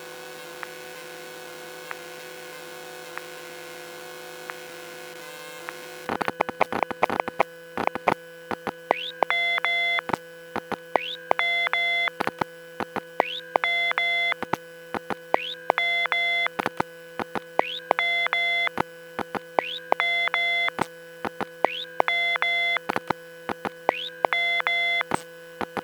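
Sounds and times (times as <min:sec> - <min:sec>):
Seagate Cheetah hard drive read error retry: 0:06.1 - 0:25.8.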